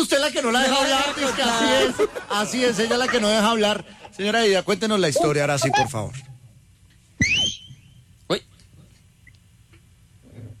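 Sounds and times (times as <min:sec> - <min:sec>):
speech: 0:00.0 - 0:06.3, 0:08.3 - 0:08.5
laughter: 0:00.4 - 0:04.4
person whistling to call an unruly group to order: 0:07.2 - 0:07.9.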